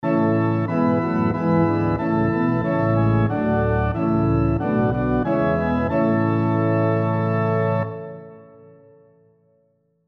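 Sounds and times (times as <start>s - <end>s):
piano playing four-part SATB harmony: 0.0s - 9.0s.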